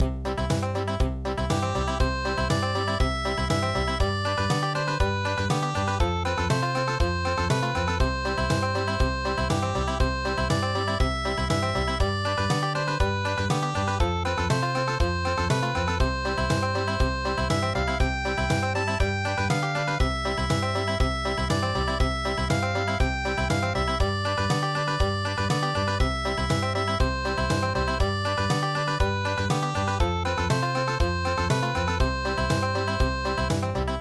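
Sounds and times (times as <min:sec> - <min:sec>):
traditional country music: 0:00.0 - 0:33.9.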